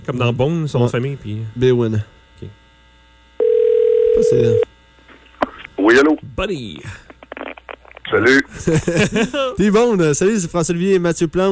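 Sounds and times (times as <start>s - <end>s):
speech: 0.0s - 2.6s, 4.2s - 4.7s, 5.8s - 7.0s, 8.1s - 11.4s
telephone tone as a call is placed: 3.4s - 4.7s
laughter: 8.2s - 9.7s.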